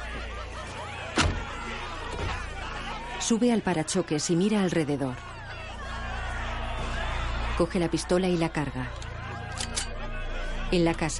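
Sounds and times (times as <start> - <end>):
laughter: 0.0 - 11.1
car boot lid slammed shut: 1.2 - 1.5
speech: 3.3 - 5.3, 7.6 - 9.0, 10.7 - 11.1.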